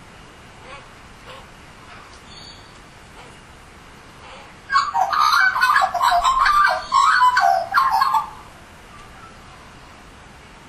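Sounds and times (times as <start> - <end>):
Australian magpie warbling fluted call: 4.7 - 8.5.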